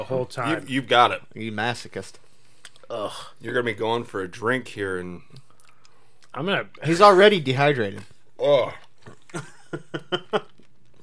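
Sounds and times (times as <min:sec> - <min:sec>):
speech: 0:00.0 - 0:02.2, 0:02.9 - 0:05.4, 0:06.3 - 0:10.5
low hum: 0:00.0 - 0:11.0
chewing crunchy food: 0:05.2 - 0:06.9, 0:08.0 - 0:11.0.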